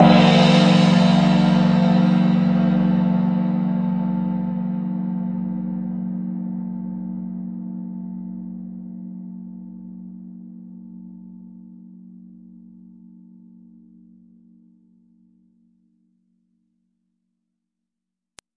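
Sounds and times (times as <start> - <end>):
two-tone gong single hits: 0.0 - 7.9.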